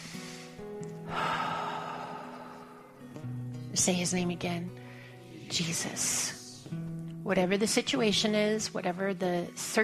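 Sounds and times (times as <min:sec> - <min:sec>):
deep breath drawn in during a guided prayer: 0:00.0 - 0:03.2, 0:04.8 - 0:05.3
speech: 0:03.8 - 0:04.8, 0:05.5 - 0:09.8.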